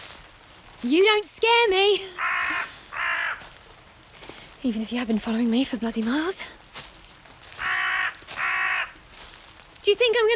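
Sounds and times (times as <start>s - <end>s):
speech: 0.8s - 2.4s, 4.6s - 6.6s, 9.9s - 10.3s
crow cawing in a forest: 2.1s - 4.6s, 6.8s - 9.5s.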